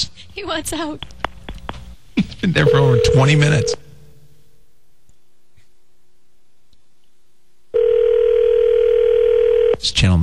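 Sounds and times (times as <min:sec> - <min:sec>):
speech: 0:00.4 - 0:01.1, 0:02.4 - 0:03.8, 0:10.0 - 0:10.2
telephone tone through a phone line: 0:02.6 - 0:03.8, 0:07.7 - 0:09.8.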